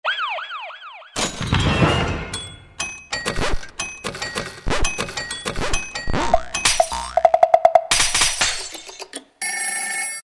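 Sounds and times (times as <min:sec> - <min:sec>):
Latin percussion effects: 0:01.2 - 0:09.1.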